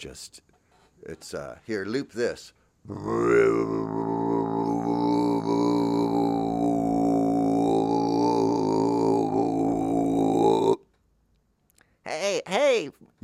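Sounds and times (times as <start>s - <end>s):
speech: 0.0s - 4.2s, 12.4s - 13.2s
Tibetan monks throat singing a low droning chant: 2.9s - 10.8s.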